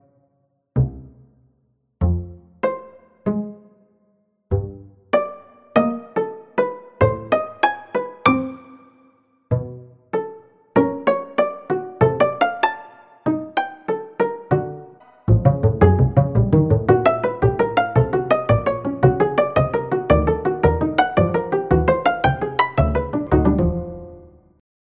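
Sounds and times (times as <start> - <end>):
upright acoustic double bass playing: 2.0 - 3.6, 4.5 - 8.7, 9.5 - 12.6, 14.3 - 24.4.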